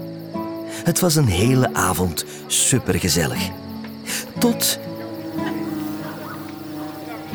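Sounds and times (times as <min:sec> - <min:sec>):
speech: 0:00.8 - 0:03.7, 0:04.4 - 0:05.5
wasp or bee buzzing: 0:05.0 - 0:07.3.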